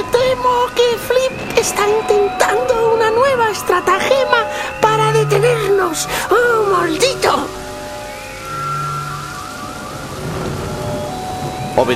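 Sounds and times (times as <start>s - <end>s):
speech: 0.0s - 7.7s, 11.8s - 11.9s
faint tonal sweeps: 0.0s - 11.9s
low thunder rumbling: 0.0s - 11.9s
rain pouring in a thunderstorm: 0.0s - 11.9s.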